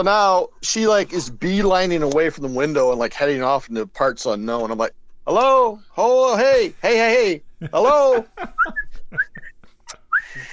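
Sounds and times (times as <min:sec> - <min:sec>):
speech: 0:00.0 - 0:09.3
laughter: 0:06.5 - 0:10.5
person whistling short rising chirps to get attention: 0:09.9 - 0:10.4.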